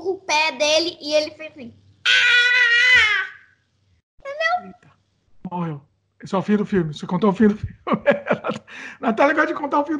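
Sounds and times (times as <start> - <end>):
speech: 0.1 - 3.2, 5.5 - 9.9
child imitating a boy crying with a wavering wail: 2.0 - 3.5
laughter: 7.7 - 8.8.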